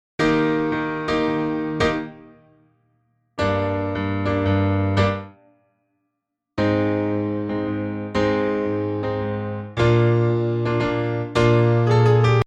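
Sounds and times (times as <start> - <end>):
piano: 0.2 - 5.8, 6.6 - 12.4.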